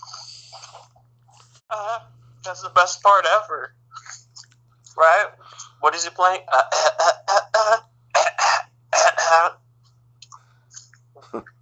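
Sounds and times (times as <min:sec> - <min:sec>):
steady low hum: 0:00.0 - 0:11.6
speech: 0:01.8 - 0:04.2, 0:05.0 - 0:07.8, 0:11.3 - 0:11.5
short throaty coughs: 0:06.6 - 0:09.5.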